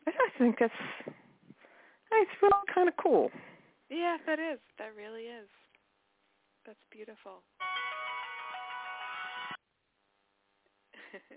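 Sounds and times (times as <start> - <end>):
speech: 0.4 - 1.2, 2.2 - 5.6, 6.6 - 7.8, 11.1 - 11.3
phone timer alarm ringing: 7.6 - 9.6.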